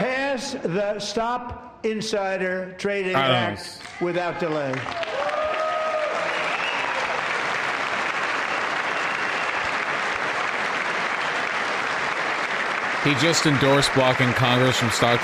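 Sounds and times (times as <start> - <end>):
speech: 0.4 - 5.1, 13.0 - 15.2
members of Congress applauding: 3.8 - 15.2.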